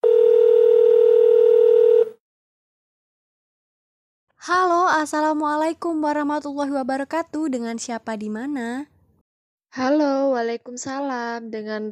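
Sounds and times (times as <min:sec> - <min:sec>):
telephone dial tone as a call connects: 0:00.0 - 0:02.2
speech: 0:04.5 - 0:08.9, 0:09.7 - 0:11.9.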